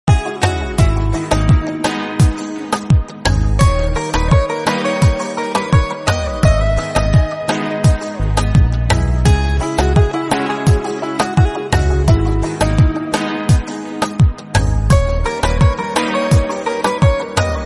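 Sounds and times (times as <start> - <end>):
African guitar ringtone: 0.1 - 17.6.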